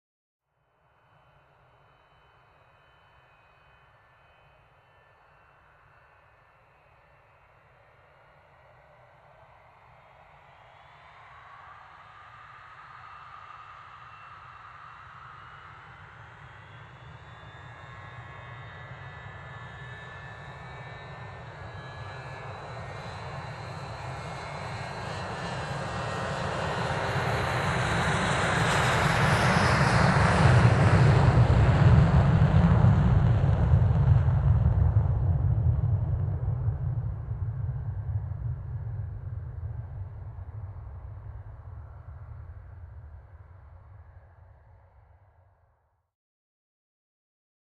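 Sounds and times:
airplane on a runway taking off: 12.9 - 44.5.

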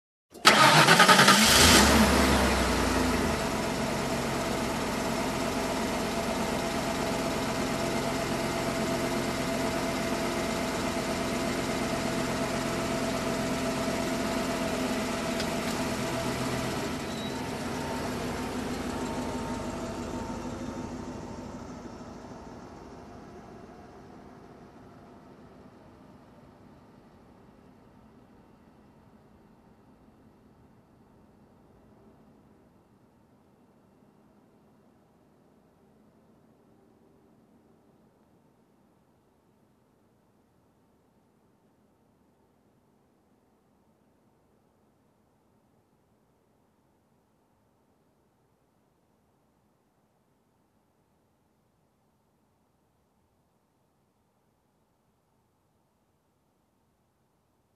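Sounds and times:
car engine ignition: 0.3 - 27.6.

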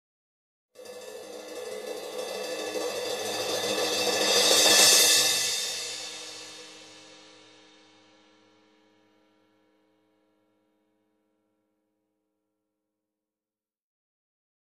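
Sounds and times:
drum crash: 0.9 - 7.4.

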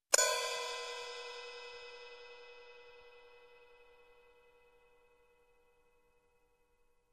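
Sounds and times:
soft cymbal hit: 0.1 - 5.4.

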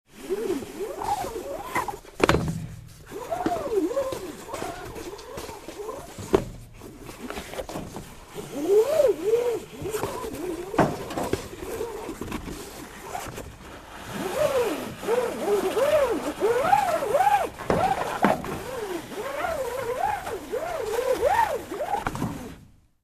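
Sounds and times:
fire water hose rolling up: 0.1 - 22.8.

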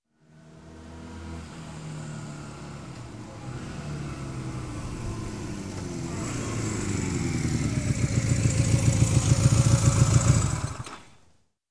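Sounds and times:
motorcycle approaching: 0.2 - 11.0
motorcycle engine turning off: 3.8 - 11.2.

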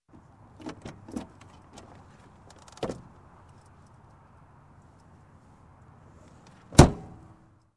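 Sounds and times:
car door opening and closing: 0.1 - 3.1, 6.5 - 7.2.

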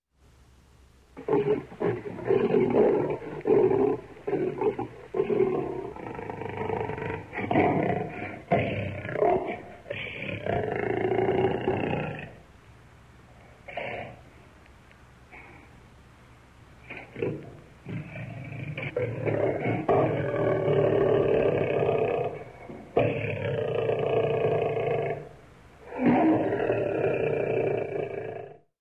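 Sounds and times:
big cat bellowing menacingly: 1.2 - 12.4, 16.8 - 28.6.

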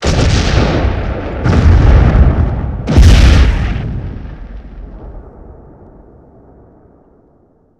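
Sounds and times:
successive explosions: 0.0 - 7.5.

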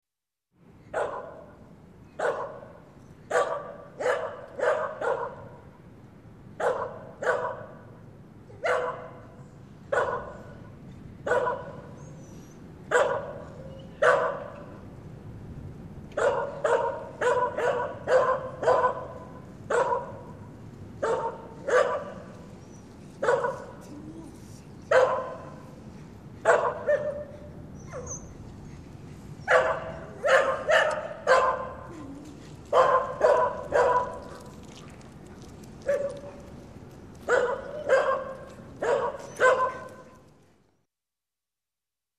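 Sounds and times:
dog barking in street at night: 0.9 - 1.5, 2.2 - 2.7, 3.3 - 5.6, 6.6 - 7.8, 8.6 - 10.6, 11.3 - 11.9, 12.9 - 14.6, 16.2 - 20.4, 21.0 - 22.3, 23.2 - 23.8, 24.9 - 25.6, 26.4 - 28.2, 29.4 - 31.9, 32.7 - 34.3, 35.9 - 36.4, 37.3 - 40.1.

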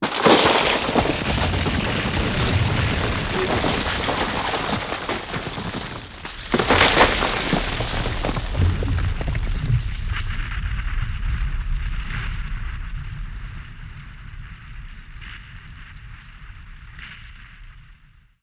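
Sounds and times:
landslide with rocks: 0.0 - 12.2.

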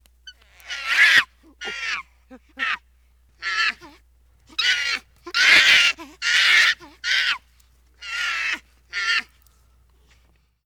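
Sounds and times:
monkey screeching: 0.3 - 2.0, 2.6 - 2.8, 3.4 - 7.4, 8.0 - 9.3.

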